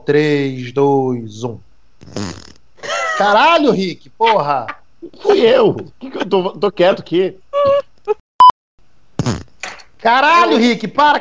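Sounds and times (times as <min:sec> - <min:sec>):
speech: 0:00.0 - 0:02.5, 0:03.2 - 0:08.2, 0:10.0 - 0:11.1
buzzy fart noises over a call line: 0:02.0 - 0:02.8, 0:09.2 - 0:09.7.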